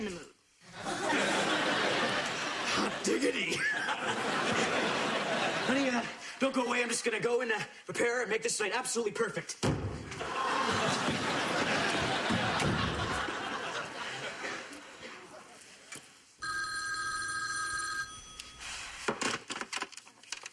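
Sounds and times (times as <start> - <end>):
speech: 0.0 - 0.9, 3.0 - 11.3
people chuckling: 0.7 - 7.0, 10.1 - 15.6
telephone ringing in a bright electronic burst: 16.4 - 19.0.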